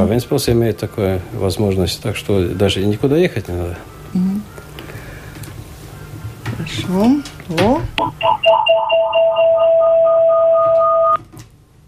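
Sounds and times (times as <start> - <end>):
speech: 0.0 - 4.5, 6.7 - 10.9
radio receiver electronic signal tone when sound is switched off: 8.0 - 11.2.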